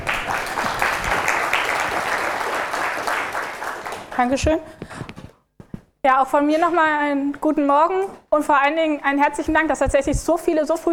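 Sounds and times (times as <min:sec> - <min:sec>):
large crowd applauding a speaker: 0:00.0 - 0:04.2
speech: 0:04.2 - 0:05.0, 0:06.0 - 0:10.9.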